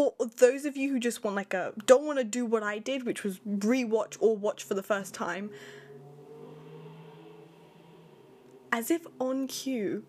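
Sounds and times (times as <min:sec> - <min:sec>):
speech: 0:00.0 - 0:05.8, 0:08.7 - 0:10.0
loud fast cars zooming past outside: 0:03.8 - 0:10.0.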